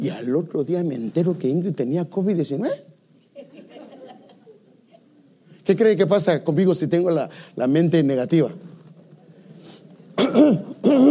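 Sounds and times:
speech: 0.0s - 2.9s, 5.7s - 8.7s, 10.4s - 11.0s
laughter: 3.4s - 5.2s
person coughing harshly: 10.2s - 11.0s.

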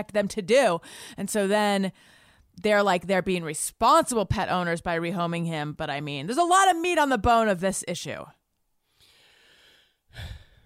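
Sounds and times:
speech: 0.0s - 8.4s, 10.1s - 10.4s
person taking a quick soft breath: 8.9s - 10.6s.

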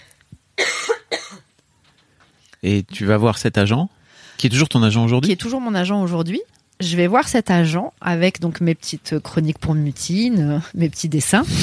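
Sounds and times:
person coughing harshly in a conversation: 0.6s - 1.5s
speech: 2.6s - 11.6s.

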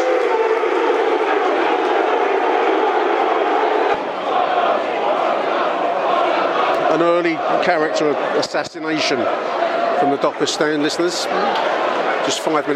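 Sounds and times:
large stadium crowd applauding and cheering at a match: 0.0s - 12.7s
murmur of voices: 0.0s - 12.7s
speech: 7.0s - 12.7s.

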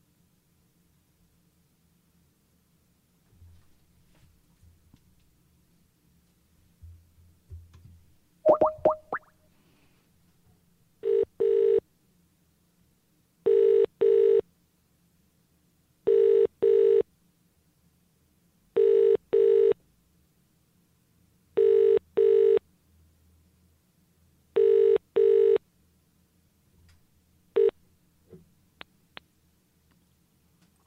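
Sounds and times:
telephone ringing tone in double pulses: 11.0s - 11.8s, 13.5s - 14.4s, 16.1s - 17.0s, 18.8s - 19.8s, 21.6s - 22.6s, 24.6s - 25.6s.

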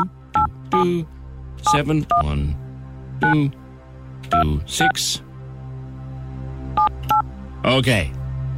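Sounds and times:
phone keypad tones dialing a number: 0.0s - 0.8s, 6.8s - 7.2s
speech: 0.8s - 2.6s, 3.2s - 3.6s, 4.2s - 5.3s, 7.6s - 8.2s.

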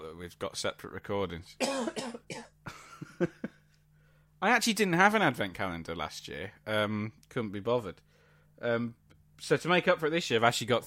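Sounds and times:
speech: 0.2s - 2.5s, 3.2s - 3.5s, 4.4s - 10.8s
person coughing: 1.6s - 3.0s.

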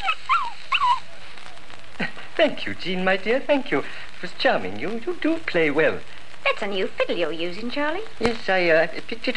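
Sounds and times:
dogs yipping: 0.0s - 1.4s
high-pitched puppy whining: 0.0s - 1.6s
speech: 2.4s - 9.3s.

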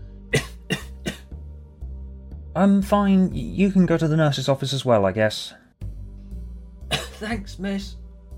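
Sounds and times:
harsh fit of coughing: 0.3s - 1.3s, 6.9s - 7.4s
speech: 2.6s - 5.6s, 7.2s - 8.0s.

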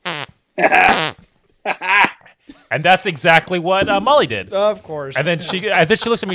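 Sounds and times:
man blowing fart noises against his hand: 0.0s - 1.4s
speech: 0.6s - 1.0s, 2.7s - 6.3s
laughter: 5.1s - 6.3s.

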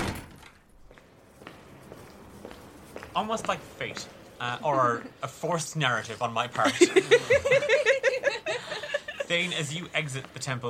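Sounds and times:
door shutting with a muffled thud: 0.0s - 0.8s
soft footsteps: 0.6s - 5.0s, 9.0s - 10.6s
speech: 3.2s - 7.9s, 9.3s - 10.6s
laughter: 6.4s - 10.2s.

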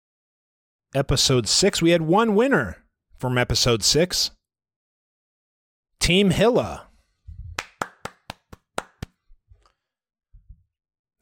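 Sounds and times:
speech: 0.9s - 4.4s, 6.0s - 6.9s
hands clapping: 7.6s - 9.2s.

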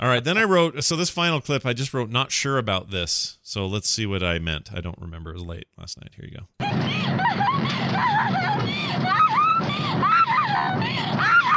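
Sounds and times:
speech: 0.0s - 11.5s
woman laughing and crying hysterically in the back of a truck: 6.6s - 11.5s.

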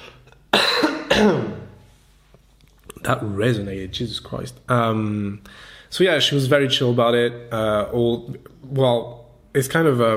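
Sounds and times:
loud harsh coughs: 0.0s - 1.7s
speech: 3.1s - 10.1s.

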